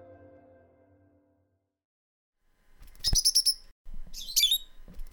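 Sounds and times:
wild rosy-faced lovebird chirps and squawks in a valley: 0:03.0 - 0:05.1.

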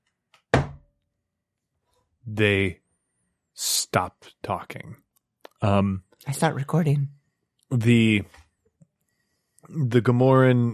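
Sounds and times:
heavy knock on a wooden door: 0:00.5 - 0:00.8
speech: 0:02.3 - 0:02.8, 0:03.6 - 0:05.0, 0:05.6 - 0:08.4, 0:09.6 - 0:10.7.

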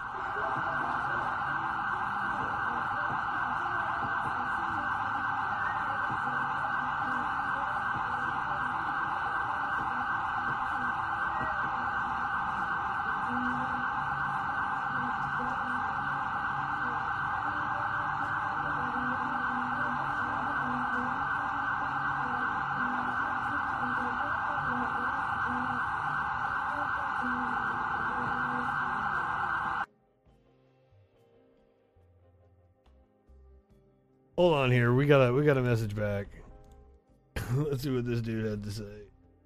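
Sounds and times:
emergency vehicle sirens wailing: 0:00.0 - 0:29.9
speech: 0:34.4 - 0:36.4, 0:37.7 - 0:39.0.

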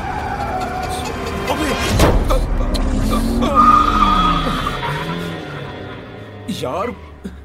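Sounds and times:
traffic noise: 0:00.0 - 0:05.3
car tires screeching and skidding on a road through a forest: 0:00.0 - 0:06.2
speech: 0:06.6 - 0:07.4.

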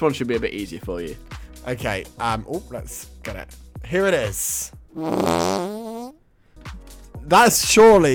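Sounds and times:
speech: 0:00.0 - 0:05.8, 0:07.2 - 0:08.1
buzzy tonal fart sound effect: 0:05.0 - 0:06.2.

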